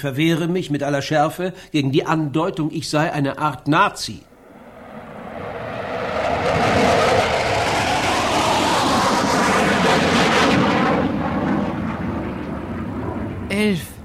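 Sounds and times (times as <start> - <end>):
speech: 0.0 - 4.3
metallic red 1956 Cadillac driving away from a bombed-out city: 4.4 - 13.5.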